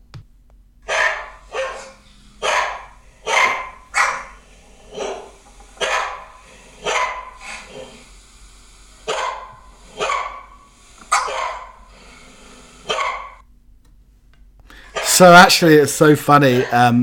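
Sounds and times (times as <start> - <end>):
several household dogs barking in chorus: 0.8 - 8.2, 9.0 - 13.4, 14.8 - 15.4
speech: 15.2 - 17.0.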